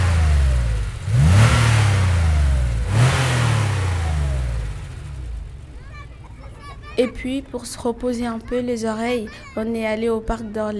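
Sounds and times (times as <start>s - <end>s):
powerful sports car engine revving loudly: 0.0s - 6.1s
speech: 7.0s - 10.7s.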